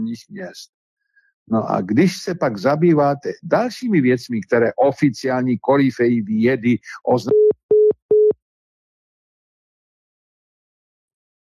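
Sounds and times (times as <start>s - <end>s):
speech: 0.0s - 0.8s, 1.5s - 7.5s
telephone tone beeps on a call back after a dropped line: 7.3s - 8.4s.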